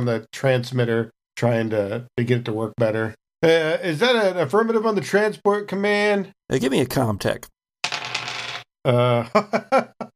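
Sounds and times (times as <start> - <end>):
speech: 0.0 - 7.5, 8.8 - 10.1
dice rattling and tumbling across a hard surface: 7.8 - 8.7
laughter: 8.9 - 10.1.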